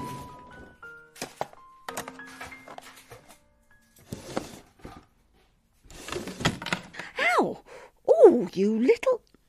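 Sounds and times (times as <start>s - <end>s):
kitchen drawer without a proper handle opening and closing: 0.0s - 5.2s, 5.8s - 7.1s
speech: 8.4s - 9.1s.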